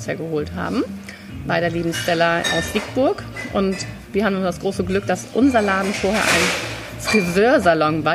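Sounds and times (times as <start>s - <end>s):
speech: 0.0s - 8.1s
dishes and glassware clinking during bar setup in a shop: 1.6s - 7.8s.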